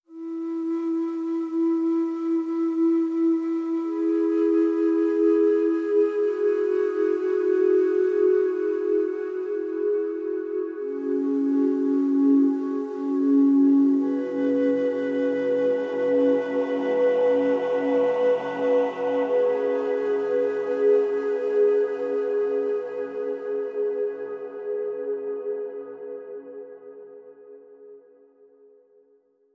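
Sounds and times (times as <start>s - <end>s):
flute: 0.0s - 29.1s
choir singing: 16.0s - 24.4s.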